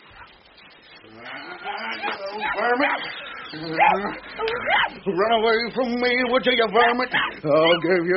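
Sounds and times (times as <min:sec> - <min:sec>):
speech: 0:01.0 - 0:08.1
small lurcher dog yelping and whimpering while beaten: 0:01.2 - 0:05.1, 0:06.8 - 0:08.1.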